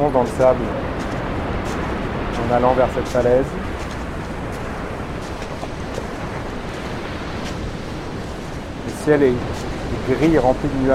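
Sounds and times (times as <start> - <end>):
speech: 0.0 - 0.9, 2.4 - 3.7, 9.0 - 10.9
gusting wind buffeting the microphone: 0.0 - 10.9
ocean surf breaking on a beach: 0.0 - 10.9.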